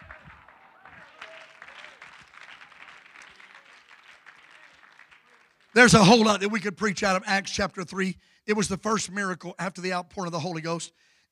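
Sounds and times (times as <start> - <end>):
voices calling out and cheering: 0.0 - 2.2, 4.4 - 9.5
congregation clapping: 0.0 - 6.5
speech: 5.8 - 11.3.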